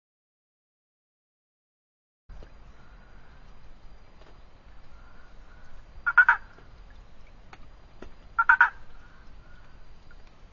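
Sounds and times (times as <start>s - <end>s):
Boana prasina treefrog rattling calls: 5.0s - 6.6s, 8.3s - 9.7s.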